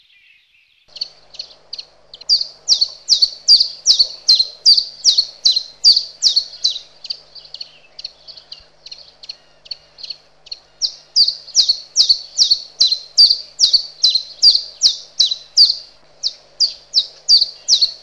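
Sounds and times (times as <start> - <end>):
common chiffchaff singing: 0.9 - 18.0.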